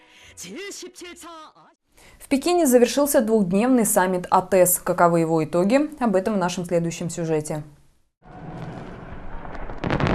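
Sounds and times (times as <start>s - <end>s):
speech: 0.4s - 7.8s
fireworks exploding at the opening of a summit in Beijing: 8.3s - 10.1s.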